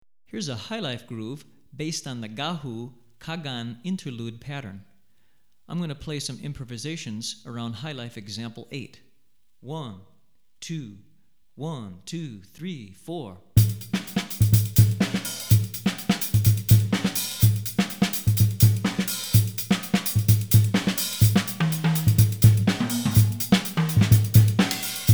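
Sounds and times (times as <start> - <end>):
West African highlife rhythms on drumset: 13.6 - 25.1.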